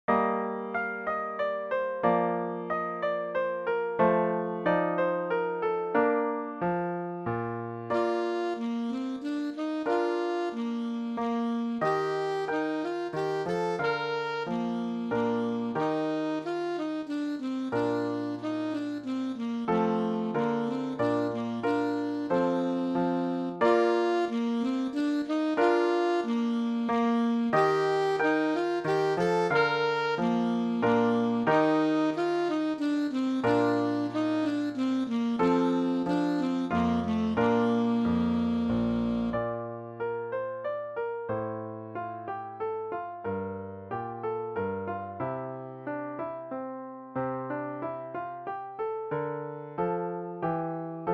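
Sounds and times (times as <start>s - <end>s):
piano accompanying a minuet: 0.0s - 51.1s
alto saxophone playing a minuet: 0.1s - 6.7s, 7.7s - 40.2s.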